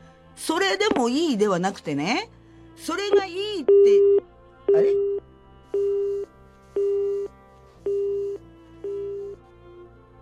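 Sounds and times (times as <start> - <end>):
speech: 0.4 - 5.1
telephone busy tone beeps after a call is cut off: 3.7 - 5.2, 5.8 - 7.3, 7.9 - 9.4.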